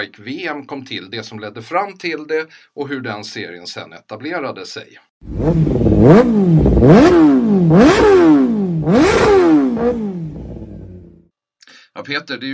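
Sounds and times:
speech: 0.0 - 8.3, 12.0 - 12.5
loud motorcycle engine revving: 5.2 - 11.3.

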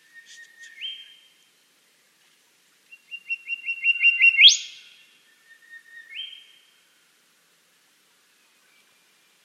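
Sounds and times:
Western Whistler song with slurred whistles, ringing notes and upward whip: 0.0 - 1.3, 2.9 - 6.6.

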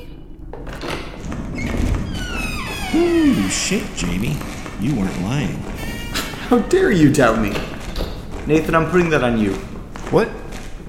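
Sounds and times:
thin high squeak of a door: 0.0 - 8.3
door being pushed open: 0.6 - 10.8
speech: 2.9 - 7.7, 8.5 - 10.4.

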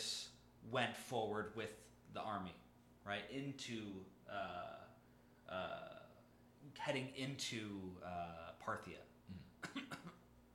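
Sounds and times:
speech: 0.6 - 6.0, 6.6 - 10.2
person clearing throat: 9.3 - 10.2.

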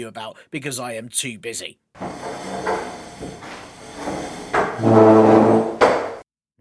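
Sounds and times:
speech: 0.0 - 3.6
chair dragged across the floor with a groaning scrape: 2.0 - 6.2
soft knocks of a chair being fetched: 2.0 - 6.2.

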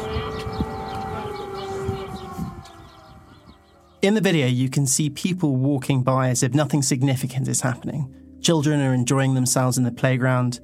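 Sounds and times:
rustle and faint bustle of an outdoor street: 0.0 - 4.0
air raid siren wailing: 0.0 - 4.4
speech: 4.0 - 10.6.

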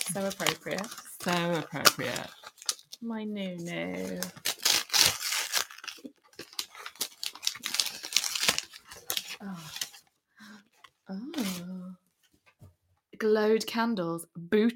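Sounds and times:
wrapping paper printed with seagulls or doves crinkling and tearing: 0.0 - 3.0, 3.6 - 10.1, 10.8 - 11.8
speech: 0.1 - 2.4, 3.0 - 4.4, 9.4 - 9.8, 13.4 - 14.7
short voiced sounds: 11.2 - 11.9.

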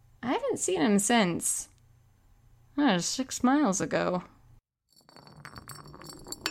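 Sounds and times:
speech: 0.3 - 1.7, 2.8 - 4.3
green glass bottle clinking and rattling: 4.9 - 6.4.

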